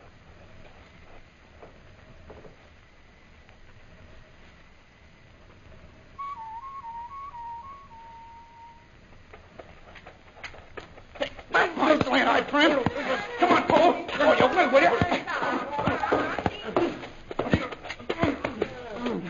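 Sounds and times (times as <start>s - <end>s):
wind: 0.0s - 19.2s
person whistling imitating a night bird call: 6.2s - 8.9s
laughter: 11.2s - 17.1s.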